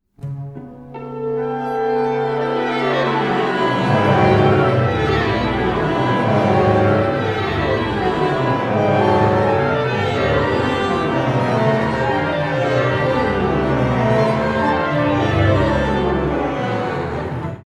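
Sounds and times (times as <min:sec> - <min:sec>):
music: 0:00.0 - 0:17.6.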